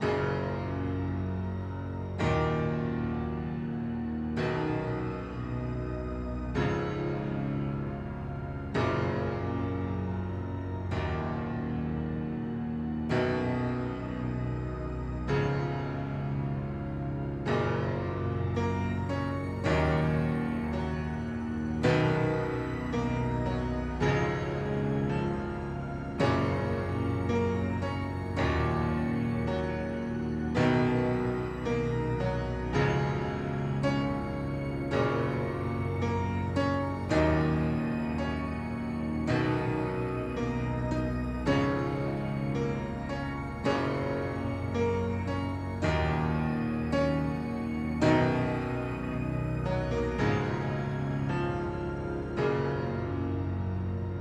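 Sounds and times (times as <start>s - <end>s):
mystical piano music: 0.0s - 54.1s.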